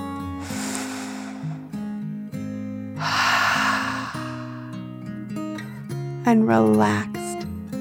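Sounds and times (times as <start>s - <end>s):
deep slow breath in and out: 0.3s - 2.2s, 3.0s - 5.0s
gentle sustained music: 0.4s - 2.1s, 2.8s - 5.1s
speech: 6.3s - 7.2s.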